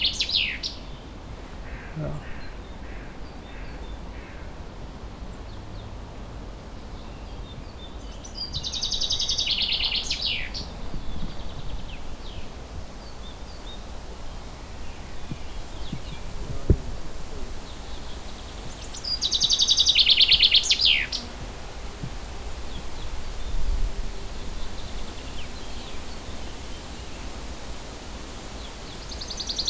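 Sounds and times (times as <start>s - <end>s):
common chaffinch singing: 0.0s - 4.6s, 6.8s - 29.6s
quiet rustling outdoor ambience: 0.0s - 29.6s
speech: 2.0s - 2.3s.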